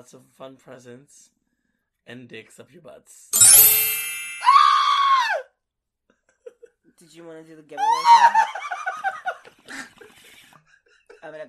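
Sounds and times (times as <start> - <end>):
speech: 0.0 - 1.4, 2.0 - 4.0, 7.0 - 8.6, 11.2 - 11.4
ringing tone: 3.4 - 5.0
person screaming into the microphone: 7.8 - 8.3
laughter: 7.8 - 11.4.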